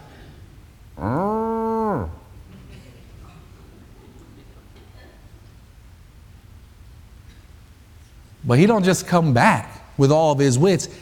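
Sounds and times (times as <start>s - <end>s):
cow mooing: 1.0s - 2.3s
speech: 8.5s - 11.0s.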